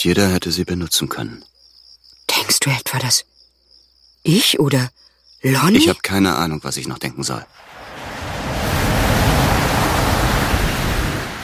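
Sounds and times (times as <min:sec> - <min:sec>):
speech: 0:00.0 - 0:01.5, 0:02.5 - 0:03.4, 0:04.2 - 0:08.0
ocean waves washing onto a shore: 0:07.6 - 0:11.4.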